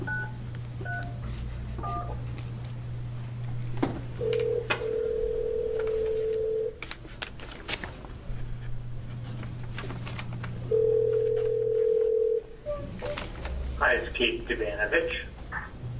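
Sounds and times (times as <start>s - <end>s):
constant low electrical hum: 0.0s - 15.9s
long steady telephone dialing tone: 4.2s - 6.8s, 10.7s - 12.5s.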